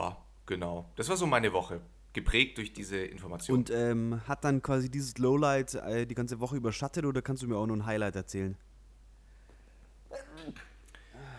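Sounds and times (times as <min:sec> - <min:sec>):
speech: 0:00.5 - 0:08.7, 0:10.1 - 0:10.7
person sneezing caused by pollen: 0:10.1 - 0:11.3
voiced exhale: 0:10.9 - 0:11.3.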